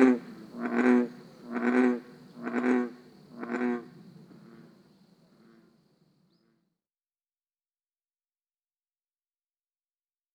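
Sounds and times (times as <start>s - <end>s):
American bullfrog croaking: 0.0s - 4.6s.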